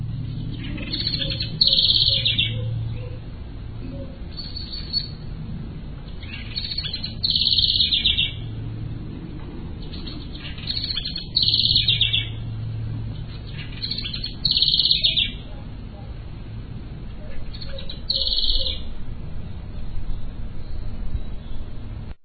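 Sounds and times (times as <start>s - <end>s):
small bird repeating a loud strange warbling call: 0.0s - 5.3s, 6.0s - 8.6s, 9.8s - 16.2s, 17.2s - 19.0s
low steady hum of traffic or engine noise: 0.0s - 22.2s.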